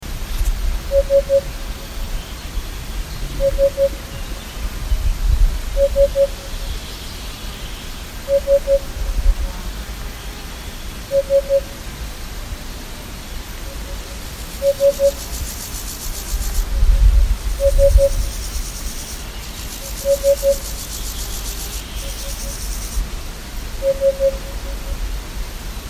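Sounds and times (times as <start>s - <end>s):
hoopoe calling: 0.8s - 4.8s, 5.7s - 6.9s, 8.0s - 10.2s, 11.0s - 11.9s, 13.4s - 23.0s, 23.8s - 25.1s.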